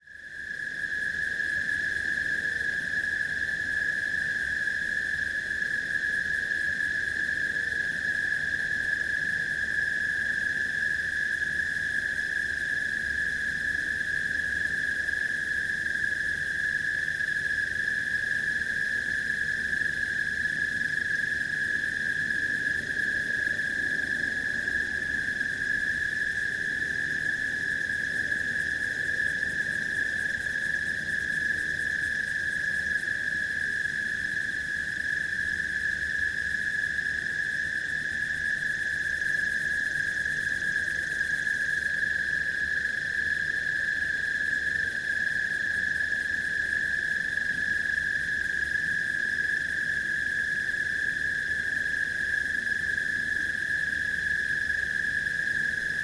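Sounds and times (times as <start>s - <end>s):
crickets at night: 0.0s - 56.0s.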